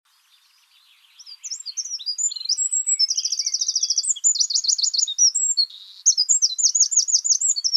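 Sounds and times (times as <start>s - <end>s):
Eurasian wren Troglodytes troglodytes song: 0.1s - 7.7s.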